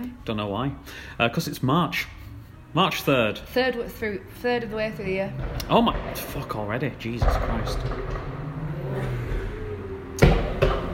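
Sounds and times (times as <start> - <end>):
speech: 0.1 - 8.3
car engine droning and revving low: 3.0 - 10.9
single sharp loud car backfire: 5.3 - 10.9.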